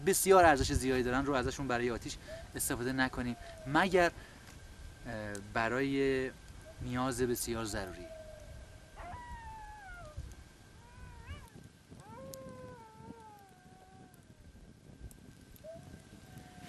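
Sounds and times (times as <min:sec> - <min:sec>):
speech: 0:00.0 - 0:04.3, 0:05.0 - 0:08.1
steady hiss: 0:00.0 - 0:16.6
wolves howling in extreme cold: 0:02.3 - 0:04.1, 0:07.8 - 0:14.4, 0:15.6 - 0:16.6.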